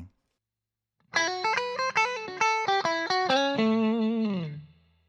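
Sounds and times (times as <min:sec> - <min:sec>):
clean electric guitar on neck and middle pickups: 0:01.1 - 0:05.0.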